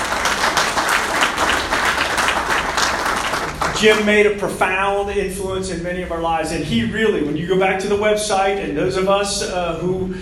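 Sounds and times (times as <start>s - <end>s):
crowd applauding: 0.0s - 4.3s
speech: 3.8s - 10.2s.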